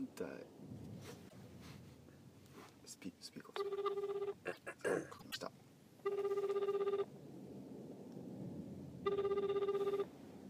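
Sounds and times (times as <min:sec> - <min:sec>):
speech: 0:00.2 - 0:01.7, 0:02.9 - 0:06.6
rustling: 0:00.8 - 0:02.9
phone call ringback tone: 0:03.6 - 0:04.4, 0:06.0 - 0:07.1, 0:09.1 - 0:10.1.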